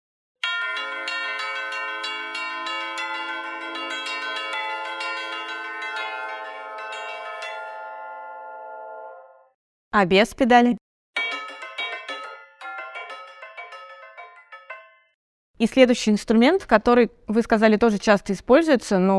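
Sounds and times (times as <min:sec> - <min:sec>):
orchestral tubular bells imitating a church bell peal: 0:00.4 - 0:09.5, 0:11.2 - 0:15.2
speech: 0:10.0 - 0:10.8, 0:15.6 - 0:19.1.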